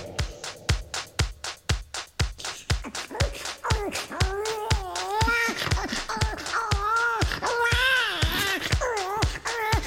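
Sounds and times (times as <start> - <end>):
thumping pop dance beat in a comedy pop song cover: 0.0 - 9.8
high wavering baby-like wail: 2.9 - 9.8.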